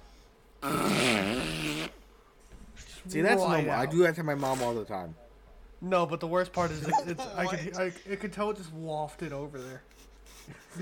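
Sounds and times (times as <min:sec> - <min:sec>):
loud buzzy fart imitation made with the mouth: 0:00.6 - 0:02.1
speech: 0:03.1 - 0:05.2, 0:05.8 - 0:10.8
laughter: 0:06.6 - 0:08.4, 0:10.3 - 0:10.8.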